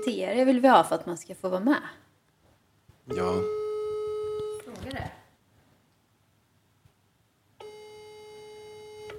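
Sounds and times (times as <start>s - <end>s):
speech: 0.0s - 2.0s, 3.1s - 3.6s
unanswered phone call steady electronic ringing tone: 3.1s - 4.7s, 7.6s - 9.1s.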